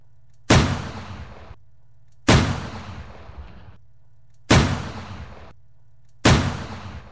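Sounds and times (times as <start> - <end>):
faint low hum: 0.0 - 7.0
Mauser pistol shots: 0.5 - 1.6, 2.2 - 3.7, 4.5 - 5.5, 6.2 - 7.0.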